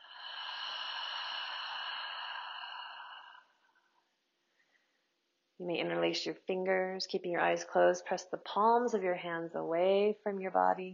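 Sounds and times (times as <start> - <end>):
deep breath during a guided relaxation exercise: 0.0 - 5.2
speech: 5.6 - 10.9.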